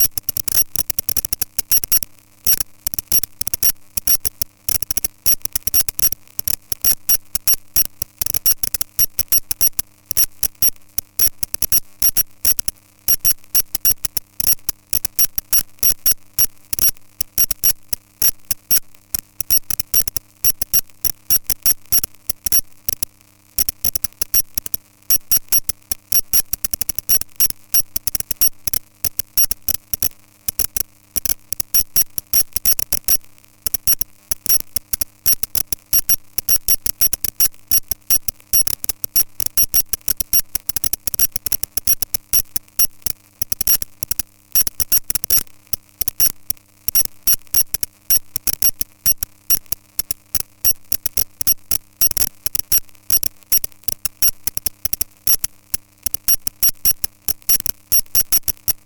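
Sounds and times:
signal interference noise: 0:00.0 - 0:58.8.

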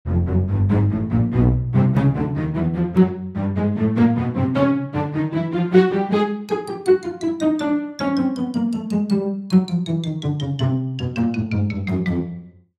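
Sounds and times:
cartoon ascending and descending pizzicato strings: 0:00.1 - 0:12.5
cartoon ascending and descending xylophone: 0:06.4 - 0:12.5.

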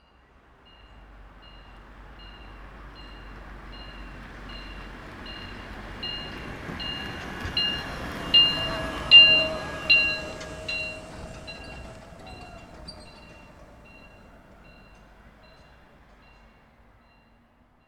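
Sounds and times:
golf buggy maintenance vehicle passing: 0:06.3 - 0:15.2.

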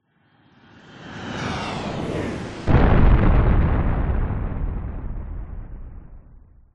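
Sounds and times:
designed jet airplane crash explosion: 0:02.6 - 0:06.6.

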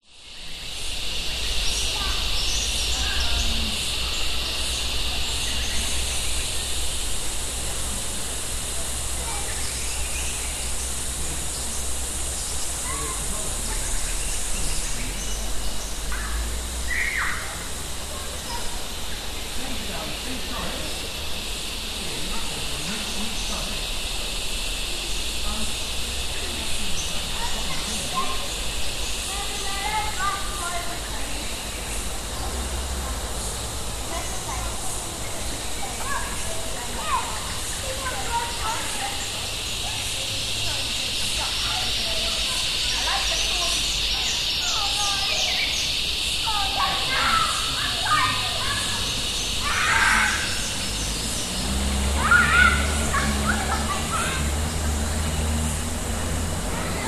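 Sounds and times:
birds in a summer forest: 0:00.0 - 0:57.0
summer forest insects at a campsite: 0:00.0 - 0:57.0
vehicle at a campsite: 0:00.0 - 0:57.0
kids chatting at a campsite: 0:00.2 - 0:57.0.

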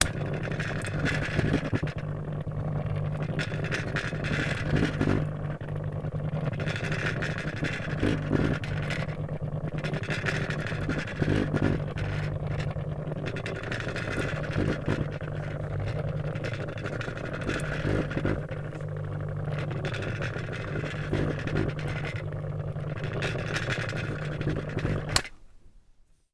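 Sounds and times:
industrial motor of a revolving disco light running down: 0:00.0 - 0:25.3.

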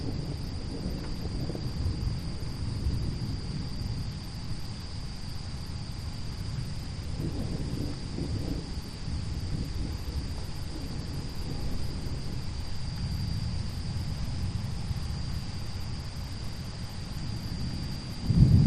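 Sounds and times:
insect chorus high-pitched whine at night: 0:00.0 - 0:18.6
loud gusty low-frequency wind before a thunderstorm: 0:00.0 - 0:18.6.

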